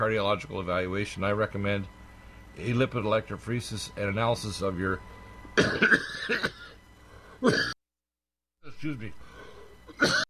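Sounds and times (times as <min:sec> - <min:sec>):
speech: 0:00.0 - 0:02.0, 0:02.6 - 0:06.8, 0:07.4 - 0:07.7, 0:08.8 - 0:10.2
person coughing: 0:05.6 - 0:06.8, 0:07.4 - 0:07.8, 0:09.9 - 0:10.2.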